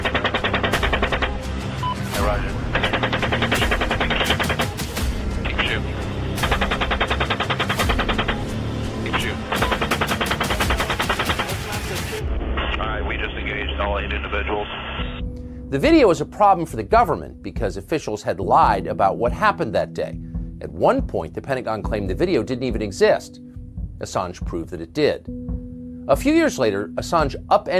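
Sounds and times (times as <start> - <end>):
machine-gun fire from a helicopter: 0.0 - 1.6, 2.2 - 5.0, 6.4 - 12.2
radio-filtered voices talking: 5.4 - 6.0, 9.0 - 15.2
speech: 15.8 - 23.4, 24.0 - 25.4, 26.1 - 27.7.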